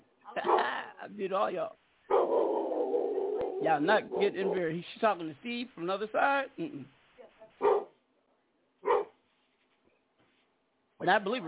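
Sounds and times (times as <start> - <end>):
speech: 0.3 - 2.6, 3.6 - 7.0, 11.0 - 11.4
dog barking: 2.1 - 4.8, 7.6 - 8.0, 8.8 - 9.2.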